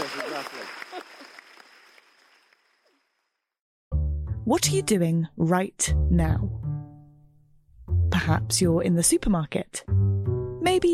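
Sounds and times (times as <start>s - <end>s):
audience applause at a live talk event: 0.0s - 2.6s
speech: 4.5s - 6.6s, 8.2s - 10.0s, 10.6s - 10.9s.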